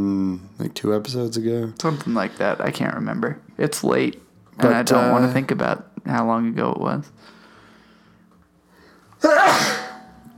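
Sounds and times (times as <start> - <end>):
speech: 0.0 - 7.4
person sneezing: 9.2 - 10.2.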